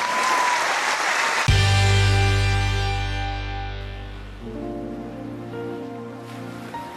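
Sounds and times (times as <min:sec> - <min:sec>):
crowd clapping: 0:00.0 - 0:01.6
loud sustained musical chord: 0:01.5 - 0:06.0.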